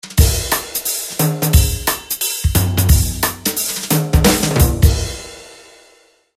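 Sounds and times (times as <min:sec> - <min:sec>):
brush groove ringtone on a mobile phone: 0:00.0 - 0:05.0.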